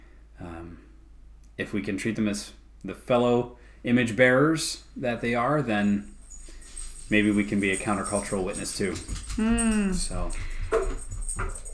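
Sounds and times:
faint room noise: 0.0s - 11.7s
speech: 1.6s - 6.2s, 7.1s - 10.8s
female dog whimpering and yelping after bringing a tennis ball: 9.3s - 10.2s.

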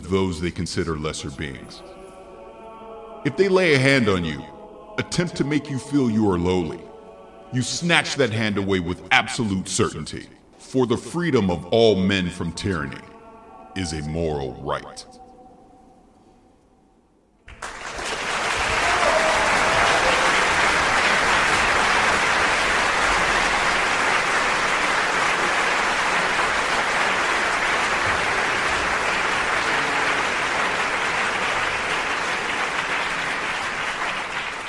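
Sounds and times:
speech: 0.1s - 2.0s, 3.2s - 6.9s, 7.5s - 13.1s, 13.8s - 15.2s
large church audience applauding: 17.5s - 34.6s.

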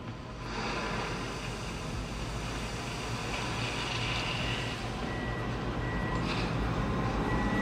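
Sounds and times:
heavy loader rumbling: 0.1s - 7.6s
gravel and rock pouring into a truck: 0.4s - 4.8s
loader reversing beeps: 4.4s - 7.6s.

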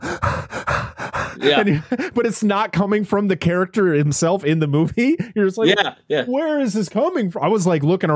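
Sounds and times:
person imitating the heavy panting of a running film character: 0.0s - 2.2s
speech: 1.4s - 8.1s.

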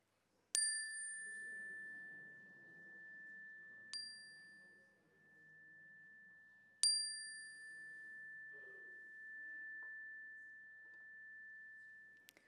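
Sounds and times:
bright metallic chime ringing: 0.6s - 12.4s.

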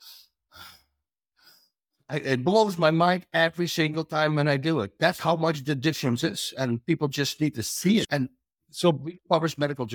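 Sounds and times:
person breathing heavily and roughly after exertion: 0.0s - 1.8s
speech: 2.1s - 9.9s.

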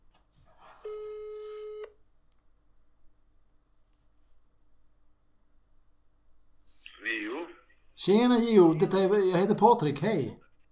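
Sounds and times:
telephone ringback tone while placing a call: 0.9s - 1.9s
speech: 8.0s - 10.4s.

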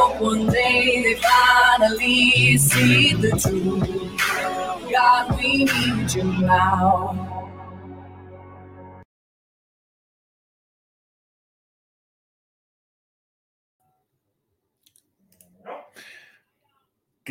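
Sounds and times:
brief burst of music: 0.0s - 9.0s
speech: 0.2s - 7.3s
dog giving short sharp barks: 15.5s - 16.1s.

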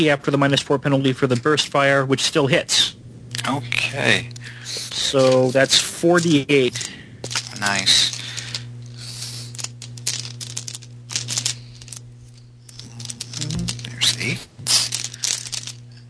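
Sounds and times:
speech: 0.0s - 7.0s, 7.6s - 8.2s
low hum: 0.1s - 16.0s
many dice rattling in a bag: 3.8s - 16.0s.

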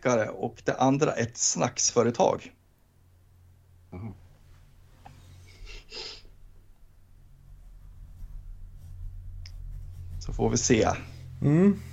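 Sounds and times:
speech: 0.0s - 2.6s, 3.9s - 4.2s, 10.3s - 11.9s
steady low hum: 2.6s - 11.9s
pen scratching on paper as a quiz contestant writes an answer: 7.8s - 11.0s.

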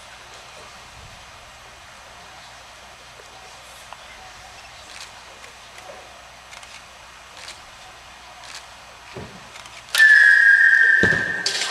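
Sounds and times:
arrow whistle sound effect: 10.0s - 11.6s.

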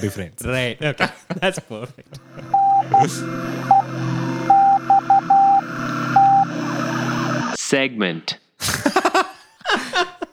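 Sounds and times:
laughter: 0.0s - 3.2s, 8.6s - 10.3s
speech: 0.0s - 4.2s, 7.7s - 9.0s
Morse code beeps spelling NEXT: 2.2s - 7.6s.

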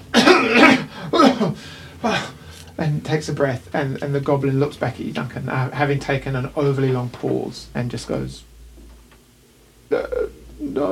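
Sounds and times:
person imitating rough throaty coughs: 0.1s - 2.4s
speech: 1.4s - 8.5s, 9.9s - 10.9s.

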